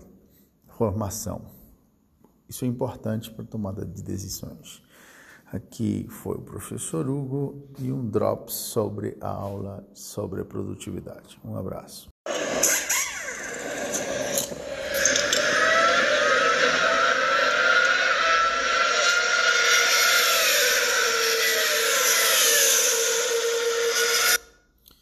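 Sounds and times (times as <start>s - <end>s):
speech: 0.8s - 1.6s, 2.5s - 12.1s
Formula 1 racing car engines screaming: 12.6s - 24.4s.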